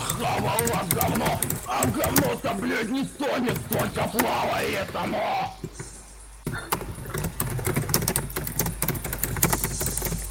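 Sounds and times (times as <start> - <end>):
typing on a keyboard: 0.0 - 2.4, 6.7 - 10.2
speech: 0.2 - 5.7.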